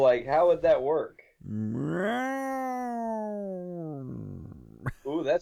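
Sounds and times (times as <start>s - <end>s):
speech: 0.1s - 2.5s, 5.1s - 5.4s
cat yowling: 1.4s - 4.9s.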